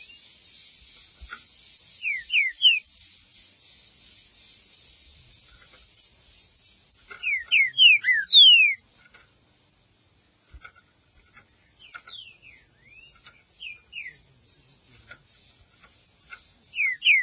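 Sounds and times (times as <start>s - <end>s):
Green-winged saltator singing descending whistles: 0.0s - 0.4s, 2.0s - 2.9s, 7.2s - 8.8s, 11.8s - 14.7s, 16.7s - 17.2s.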